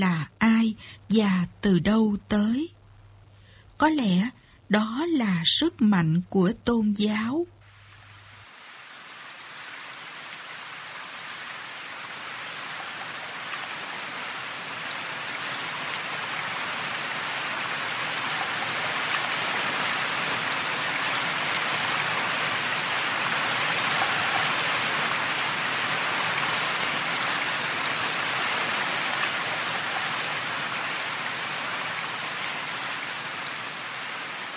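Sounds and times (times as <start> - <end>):
speech: 0.0 - 2.8, 3.8 - 7.6
heavy rain drumming on a corrugated tin roof: 7.6 - 34.5.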